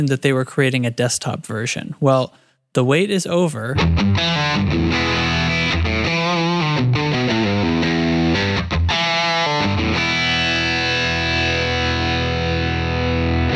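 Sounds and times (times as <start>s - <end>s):
speech: 0.0s - 6.2s
heavily distorted electric guitar through amp modeling software playing a chugging riff: 3.8s - 13.5s.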